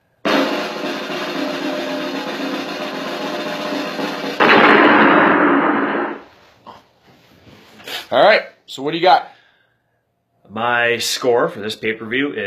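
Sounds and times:
sustained rapid drum roll: 0.0 - 6.4
booming explosion effect: 0.2 - 6.3
speech: 8.1 - 9.3, 10.5 - 12.4.

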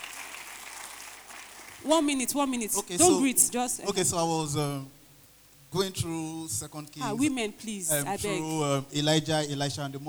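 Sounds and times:
audience clapping: 0.0 - 1.9
speech: 1.8 - 5.0, 5.7 - 10.0.

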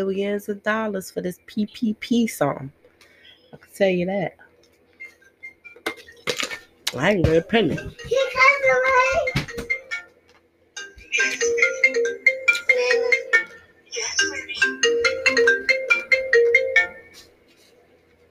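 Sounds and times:
speech: 0.0 - 2.8, 3.5 - 4.4, 6.9 - 9.7
phone ringtone with a bright bouncing melody: 7.7 - 10.2, 10.8 - 17.3
child's voice: 7.9 - 9.4, 12.6 - 14.7.

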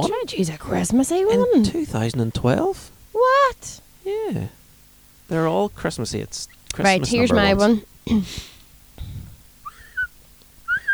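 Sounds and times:
speech: 0.0 - 4.6, 5.3 - 8.5
two people whistling a tune: 9.7 - 10.1, 10.7 - 10.9.

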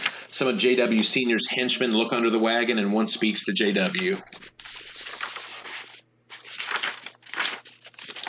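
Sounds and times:
speech: 0.4 - 4.5
paper script page being turned: 3.6 - 8.2.

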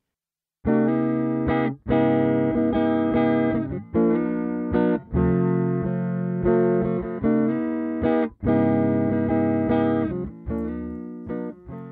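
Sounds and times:
electric guitar with single-coil pickup through overdrive pedal playing chords: 0.6 - 11.9.

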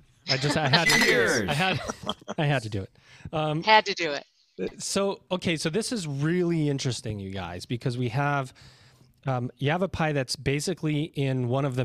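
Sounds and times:
glasses clinking in a toast: 0.3 - 2.2
laughter: 0.3 - 2.7
speech: 0.3 - 11.8.

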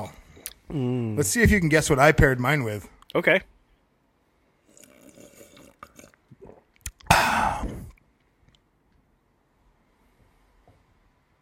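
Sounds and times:
speech: 0.0 - 3.5
person gulping water loudly: 4.6 - 8.0
slurps and swallows of water: 4.6 - 8.0.

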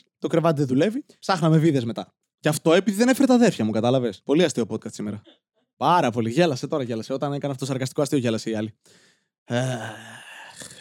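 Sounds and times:
speech: 0.2 - 10.7
person yawning: 9.5 - 10.7.

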